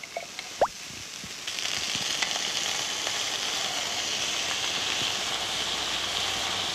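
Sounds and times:
coconut milk sizzling in a hot pan of coconut: 0:00.0 - 0:06.7.

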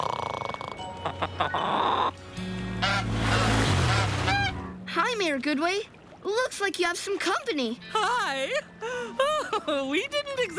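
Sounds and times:
swans honking: 0:00.9 - 0:04.8
speech: 0:01.0 - 0:03.2, 0:05.1 - 0:09.0, 0:09.6 - 0:10.5.

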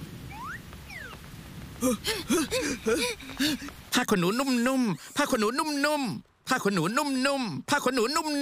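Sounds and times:
steady soft rain falling: 0:00.0 - 0:08.4
rising and falling whistle-like tones: 0:00.3 - 0:01.2
speech: 0:01.8 - 0:08.4.

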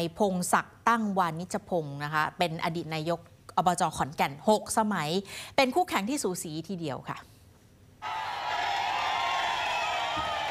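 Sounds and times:
speech: 0:00.0 - 0:07.3
crowd of supporters cheering: 0:08.0 - 0:10.4.

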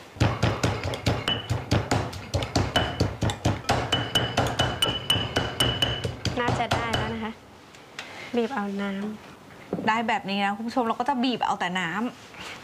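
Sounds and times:
pestle pounding ginger in a mortar: 0:00.2 - 0:07.4
speech: 0:08.4 - 0:12.6.

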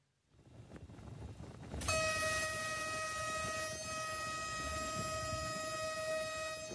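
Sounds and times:
locomotive-hauled passenger train rumbling: 0:00.6 - 0:06.7
locomotive-hauled passenger train horn blasting: 0:01.8 - 0:06.7.

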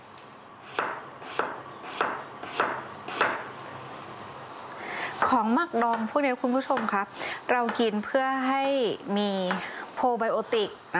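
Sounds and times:
knife slicing vegetables onto a cutting board: 0:00.6 - 0:03.5
speech: 0:05.3 - 0:10.9.

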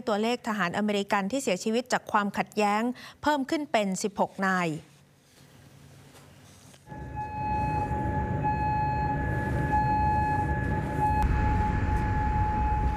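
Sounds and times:
speech: 0:00.0 - 0:04.9
air raid warning siren in Kuwait City: 0:06.9 - 0:12.9
constant low rumble of noise: 0:06.9 - 0:12.9.

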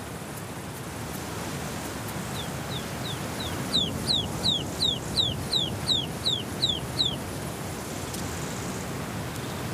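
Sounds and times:
steady hiss: 0:00.0 - 0:09.7
ptarmigan chicks calling loudly in mountain terrain: 0:02.4 - 0:07.2.

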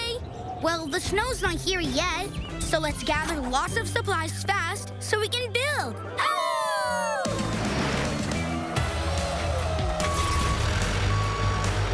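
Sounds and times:
speech: 0:00.6 - 0:06.5
delivery truck engine rumble: 0:07.3 - 0:11.9
delivery truck bringing building supplies beeping as it reverses: 0:09.9 - 0:11.9.

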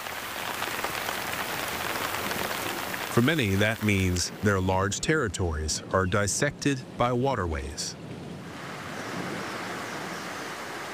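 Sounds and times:
heavy rainforest rain striking leaves and ground: 0:00.0 - 0:04.5, 0:08.5 - 0:10.9
speech: 0:03.2 - 0:08.0.

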